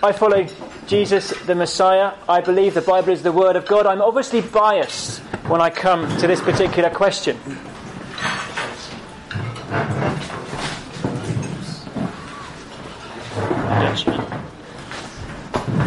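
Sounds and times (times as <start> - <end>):
speech: 0.0 - 7.6
wooden chair creaking and straining: 4.9 - 8.7, 9.3 - 15.8.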